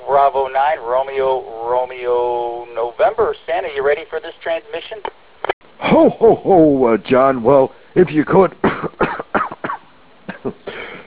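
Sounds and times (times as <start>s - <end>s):
speech: 0.2s - 2.3s, 3.1s - 8.7s
hoarse coughs over a narrow-band radio link: 8.6s - 11.0s
throat clearing over a narrow-band radio link: 8.6s - 11.0s.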